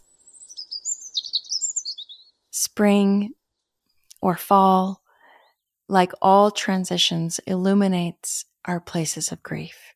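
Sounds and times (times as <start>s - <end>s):
springtime birdsong from a nest-building bird outside an office: 0.0s - 2.8s
speech: 2.8s - 3.4s, 4.2s - 5.0s, 5.9s - 9.8s.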